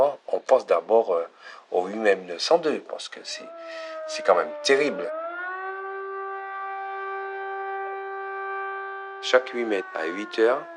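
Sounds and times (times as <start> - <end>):
speech: 0.4 - 5.3, 9.2 - 10.7
fire brigade siren wailing in Martinique: 3.1 - 10.7.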